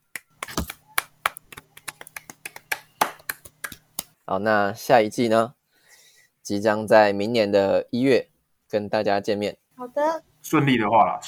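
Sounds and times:
a few people clapping in applause: 0.1s - 4.1s
speech: 4.3s - 5.6s, 6.5s - 11.2s.

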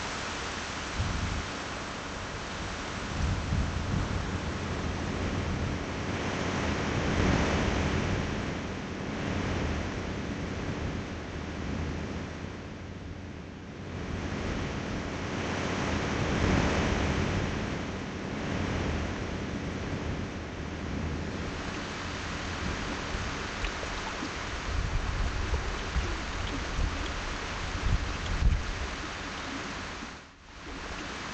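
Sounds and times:
waves washing onto a beach: 0.0s - 31.3s.

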